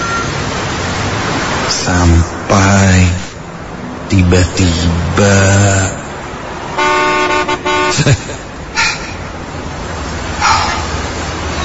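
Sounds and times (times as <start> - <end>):
road noise: 0.0 - 11.6
traffic sound: 0.0 - 11.6
speech: 1.8 - 3.2, 4.1 - 6.0, 7.9 - 8.4
car horn honking at a traffic light: 6.7 - 8.1.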